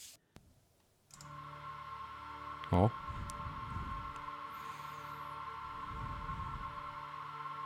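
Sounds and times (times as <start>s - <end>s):
steady humming tones: 1.1s - 7.6s
sustained hissing synthesizer drone opening a rock track: 1.2s - 7.6s
slow low rumbles: 2.0s - 4.6s, 5.2s - 7.6s
speech: 2.7s - 3.0s.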